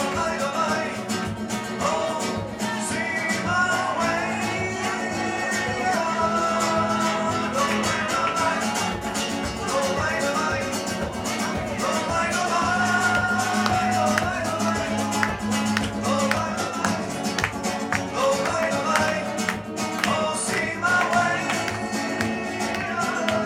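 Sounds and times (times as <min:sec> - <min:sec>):
faint diner chatter in a small Spanish restaurant: 0:00.0 - 0:23.4
two musicians playing live music in a small Spanish restaurant: 0:00.0 - 0:23.4
quick percussive taps and strums: 0:08.8 - 0:23.4.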